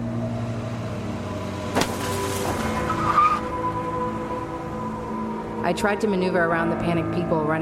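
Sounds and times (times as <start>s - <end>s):
car engine droning: 0.0s - 7.5s
car tires squealing and skidding: 1.7s - 5.1s
speech: 5.7s - 7.5s.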